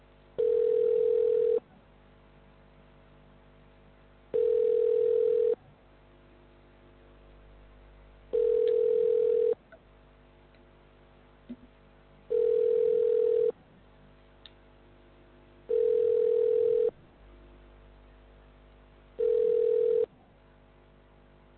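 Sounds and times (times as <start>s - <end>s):
telephone ringback tone: 0.4s - 1.6s, 4.3s - 5.6s, 8.3s - 9.6s, 12.3s - 13.5s, 15.7s - 16.9s, 19.2s - 20.1s.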